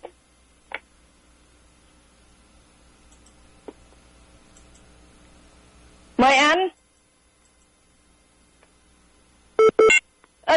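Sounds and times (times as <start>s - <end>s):
speech: 6.2s - 6.7s
mobile phone electronic beeps: 9.6s - 10.0s.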